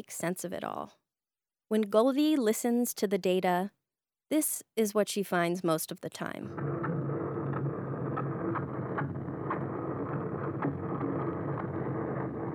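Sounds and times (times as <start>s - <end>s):
speech: 0.0s - 1.0s, 1.7s - 6.8s
faint periodic clicks and ticks: 6.5s - 12.5s
underwater boat engine noise recorded by hydrophone: 6.5s - 12.5s.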